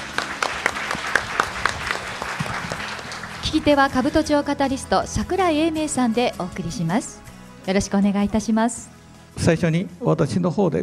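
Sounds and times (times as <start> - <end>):
audience applause welcoming a guest: 0.0 - 4.1
speech: 3.5 - 10.8.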